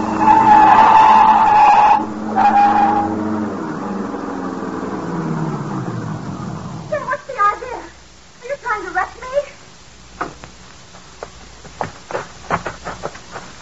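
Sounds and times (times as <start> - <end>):
car tires squealing as it skids off the road: 0.0 - 7.1
car engine roaring: 0.0 - 7.3
voices: 0.0 - 9.7.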